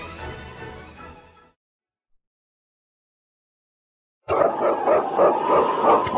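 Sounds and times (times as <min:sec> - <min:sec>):
husky sled dogs barking and yelping: 0:04.3 - 0:06.1.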